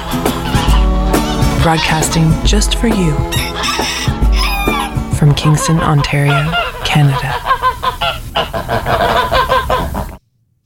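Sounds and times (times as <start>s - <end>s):
flock of geese honking: 0.0s - 10.2s
speech: 1.6s - 4.0s, 5.2s - 7.4s, 8.4s - 9.2s.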